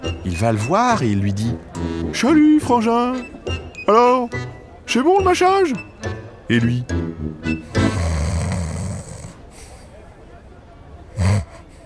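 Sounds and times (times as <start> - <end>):
speech: 0.0 - 5.9, 6.5 - 8.2
snoring with loud rasping snorts: 7.8 - 9.4, 11.2 - 11.8.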